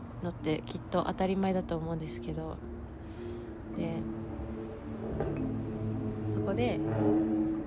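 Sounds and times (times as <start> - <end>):
speech: 0.2 - 2.7, 3.8 - 4.2, 6.3 - 7.4
loud motorbike engine droning: 3.2 - 7.6.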